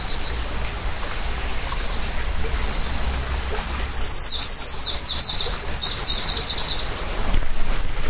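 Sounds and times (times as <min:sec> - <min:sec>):
greenish warbler song: 0:00.0 - 0:00.5, 0:01.8 - 0:07.0
steady background hiss: 0:00.0 - 0:08.0.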